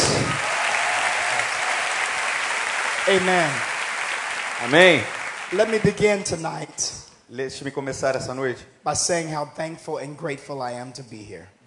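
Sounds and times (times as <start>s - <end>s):
large audience applause: 0.0s - 6.4s
speech: 3.1s - 3.7s, 4.6s - 11.6s.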